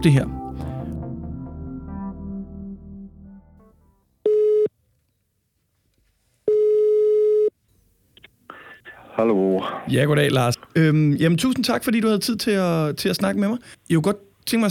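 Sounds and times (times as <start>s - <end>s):
speech: 0.0s - 0.4s, 9.2s - 14.6s
music: 0.0s - 4.1s
telephone ringback tone while a call goes through: 4.3s - 4.7s, 6.5s - 7.5s.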